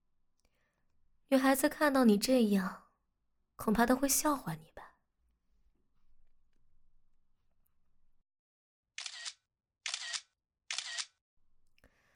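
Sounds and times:
speech: 0:01.3 - 0:02.8, 0:03.6 - 0:04.9
camera shutter clicks: 0:09.0 - 0:11.2.

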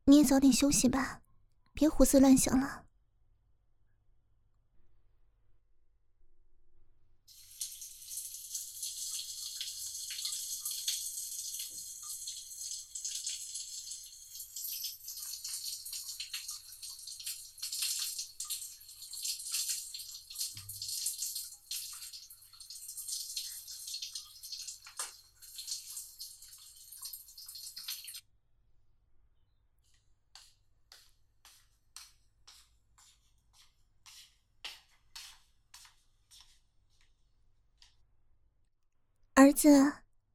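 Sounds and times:
speech: 0:00.1 - 0:01.2, 0:01.8 - 0:02.8, 0:39.5 - 0:40.0
water running from a tap as someone takes a bath: 0:07.3 - 0:28.2.

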